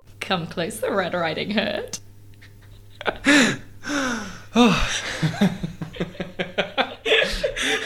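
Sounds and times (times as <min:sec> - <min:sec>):
speech: 0:00.3 - 0:02.1, 0:03.1 - 0:03.6
quick chuckling breaths: 0:02.5 - 0:05.9, 0:07.0 - 0:07.8
loud theatrical breathy gasps: 0:03.3 - 0:04.9.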